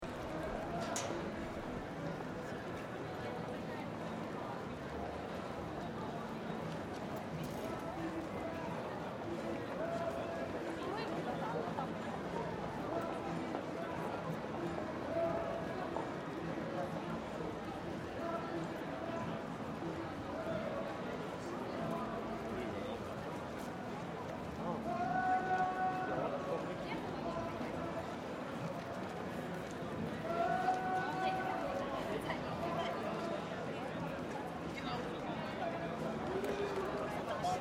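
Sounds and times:
medium crowd in European city street: 0.0 - 37.5.

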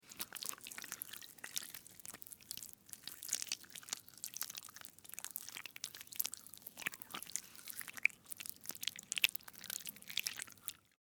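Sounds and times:
slimy wet worm crawling: 0.0 - 11.0.

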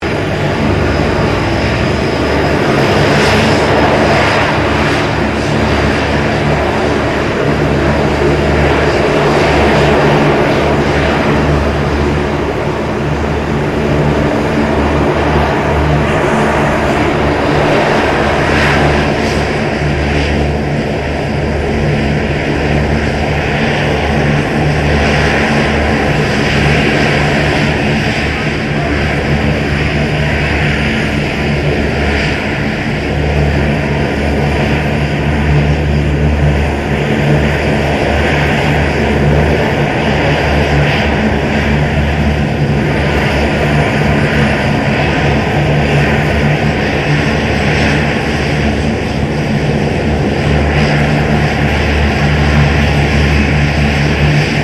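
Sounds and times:
2008 C-27J Spartan transport aircraft idling: 0.0 - 54.6.

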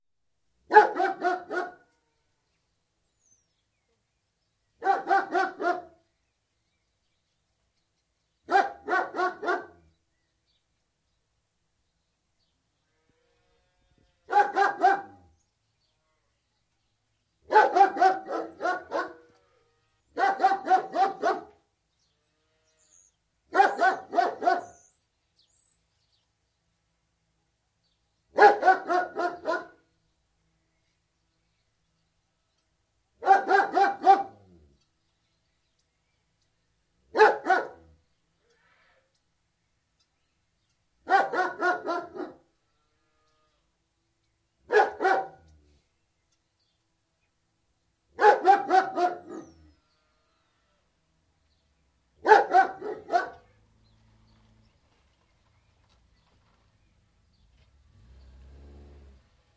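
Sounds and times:
large Alsatian barking: 0.7 - 1.9, 4.8 - 6.0, 8.5 - 9.9, 14.3 - 15.4, 17.5 - 19.3, 20.1 - 21.6, 23.5 - 24.9, 28.3 - 29.9, 33.2 - 34.6, 37.1 - 38.0, 41.0 - 42.5, 44.7 - 45.6, 48.2 - 49.7, 52.2 - 53.6
birdsong: 0.7 - 26.8, 27.8 - 59.5.

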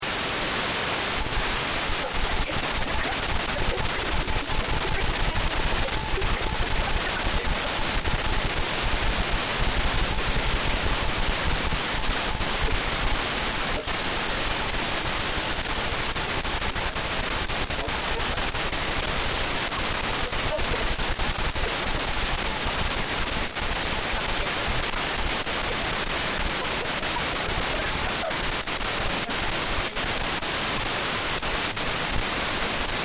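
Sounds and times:
TV UHF static and snow with uneven white noise: 0.0 - 33.0
laughter: 1.9 - 9.0, 16.7 - 30.2.

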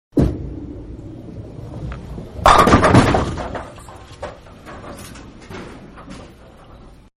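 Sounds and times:
bowling strike close to pins: 0.1 - 4.5
bowling ball rolling: 0.2 - 6.8.

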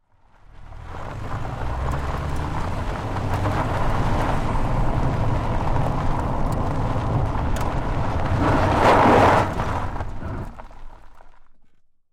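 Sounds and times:
car tires rolling fast on gravel dirt, recorded onboard: 0.0 - 11.8.

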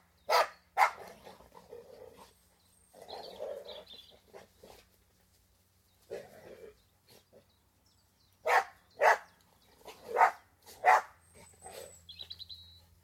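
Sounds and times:
early morning birdsong: 0.0 - 13.0
Border Collies and Labradors barking while playing outdoors: 0.3 - 1.2, 8.4 - 9.3, 9.9 - 11.9
Border Collies and Labradors growling while playing outdoors: 1.0 - 5.0, 6.0 - 7.4.

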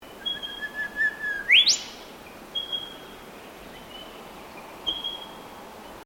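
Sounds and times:
quiet background hiss: 0.0 - 6.0
bird calling with thin whistled notes: 0.2 - 2.0, 2.6 - 3.0, 4.9 - 5.4.

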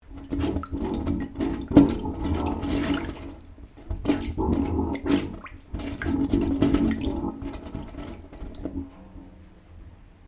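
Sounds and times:
water gurgling in pipe: 0.0 - 9.0.

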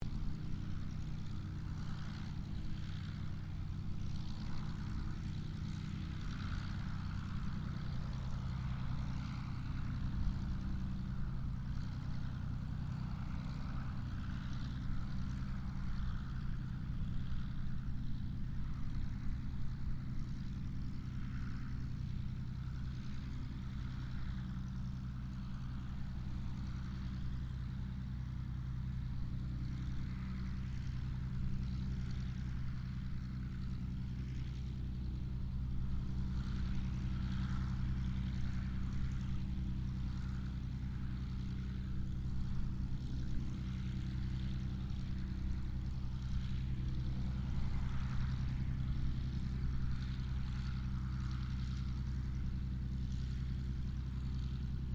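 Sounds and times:
distant P-40 Kittyhawk propeller aircraft idling: 0.0 - 54.9.

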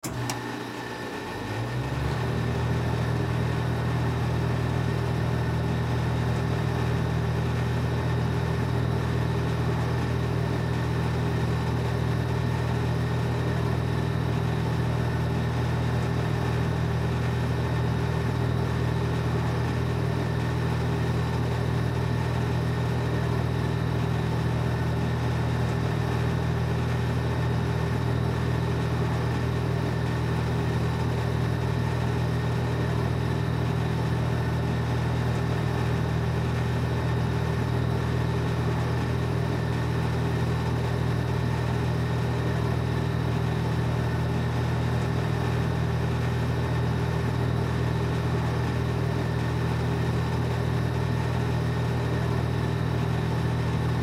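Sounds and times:
welding machine generator running: 0.0 - 54.0.

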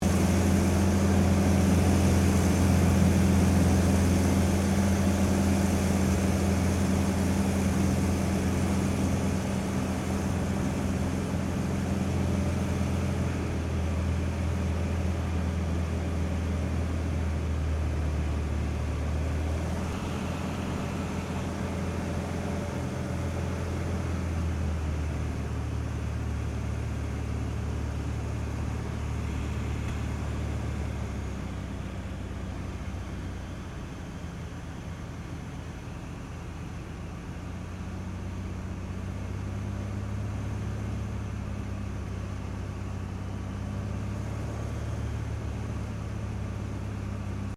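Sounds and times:
CT4A training aircraft flying, interior, decelerating: 0.0 - 47.5.

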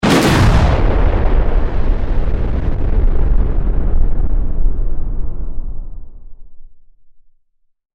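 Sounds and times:
science fiction explosion rumble with crackles: 0.0 - 7.0.

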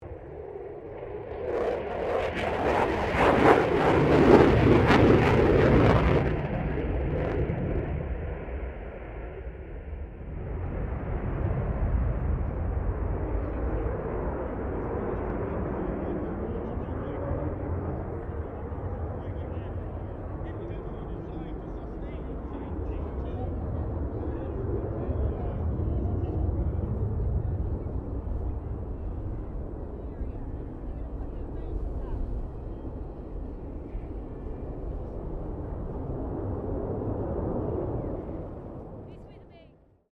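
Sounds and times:
distant F16 Falcon jet fighter pass: 0.0 - 39.6.

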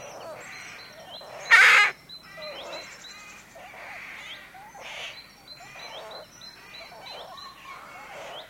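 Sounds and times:
rook quieter hoarse calls in a rookery: 0.0 - 8.4
rook single loud rasping caw: 1.4 - 5.0.

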